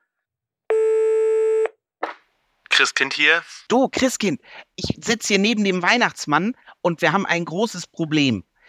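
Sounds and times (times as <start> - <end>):
long steady telephone tone: 0.7 - 1.8
speech: 2.8 - 8.6.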